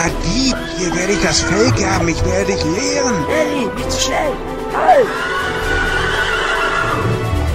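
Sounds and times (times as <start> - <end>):
speech: 0.0 - 5.9
startled horse shying and whinnying: 0.2 - 2.2, 4.7 - 7.4.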